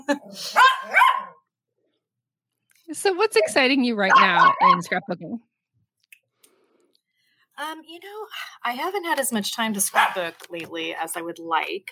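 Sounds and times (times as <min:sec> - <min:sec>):
speech: 0:00.1 - 0:00.6, 0:02.9 - 0:05.5, 0:07.7 - 0:11.9
family's puppy barking: 0:00.6 - 0:01.4, 0:04.1 - 0:04.9, 0:10.0 - 0:10.2.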